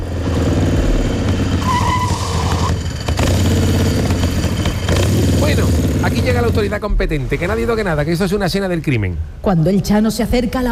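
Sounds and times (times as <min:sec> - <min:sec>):
motorcycle engine revving and riding off: 0:00.0 - 0:06.8
speech: 0:06.3 - 0:10.7.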